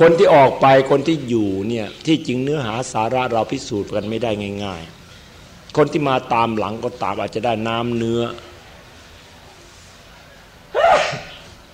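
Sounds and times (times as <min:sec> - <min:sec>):
speech: 0:00.0 - 0:05.0, 0:05.7 - 0:08.5
person sneezing: 0:10.8 - 0:11.3.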